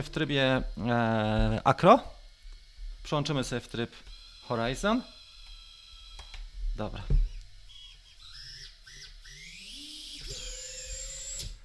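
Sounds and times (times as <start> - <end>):
speech: 0.0 - 2.2, 3.0 - 5.2, 6.8 - 7.2
small FPV drone motors whining and revving: 0.0 - 11.6.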